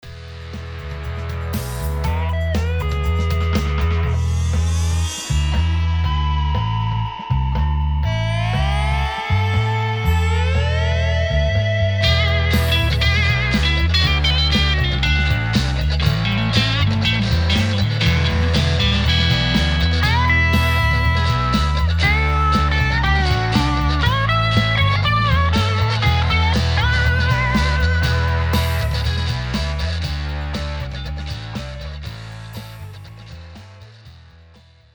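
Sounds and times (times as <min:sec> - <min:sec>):
blues lead guitar: 0:00.1 - 0:07.2, 0:08.0 - 0:34.0.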